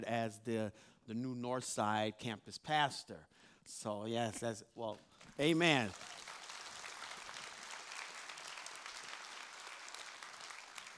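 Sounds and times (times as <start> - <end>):
speech: 0.0 - 6.2
audience clapping at a church service: 5.2 - 10.9.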